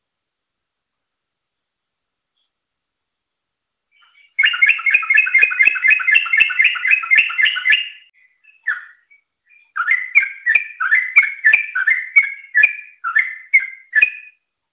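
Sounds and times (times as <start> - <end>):
yellow-vented bulbul song: 3.9 - 14.4.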